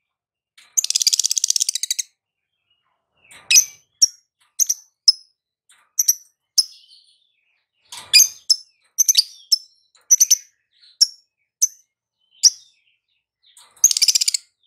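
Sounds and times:
Konslet-style lovebird chirping: 0.8 - 2.1, 3.3 - 5.3, 6.0 - 7.2, 8.0 - 14.6.

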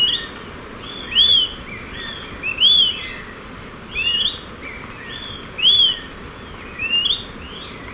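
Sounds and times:
smoke-colored pewee Contopus fumigatus ardosiacus giving short arched whistles: 0.9 - 3.2, 3.9 - 4.4, 5.0 - 6.1, 6.7 - 7.9.

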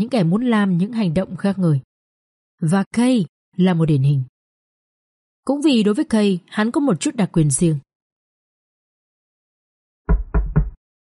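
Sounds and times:
speech: 0.0 - 1.9, 2.6 - 4.3, 5.5 - 7.8
knocking on a room door: 10.1 - 10.8.

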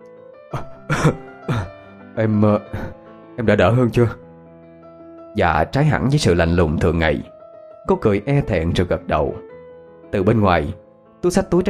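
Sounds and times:
speech: 0.5 - 1.3, 2.2 - 4.2, 5.4 - 9.5, 10.1 - 11.6
man in a hospital bed coughing roughly: 0.5 - 1.8.

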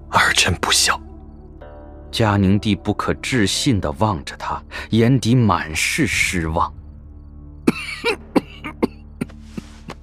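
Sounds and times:
speech: 0.4 - 1.1, 2.1 - 6.8, 8.0 - 8.2
man coughing low with rough throaty bursts: 7.6 - 9.4
throat clearing: 7.7 - 10.0.

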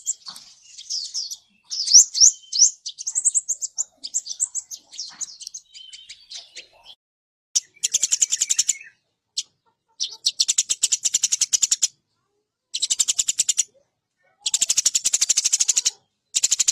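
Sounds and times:
bird chirps and slurred notes: 0.0 - 7.0, 7.6 - 12.0, 12.7 - 16.7.

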